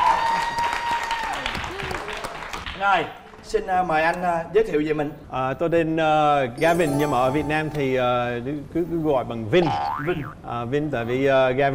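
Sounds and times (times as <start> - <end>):
audience applause: 0.0 - 2.8
speech: 2.8 - 11.7
thin sustained tone: 6.6 - 8.5.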